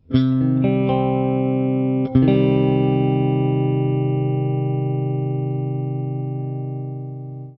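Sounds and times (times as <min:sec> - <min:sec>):
guitar open chords in C minor: 0:00.0 - 0:07.5.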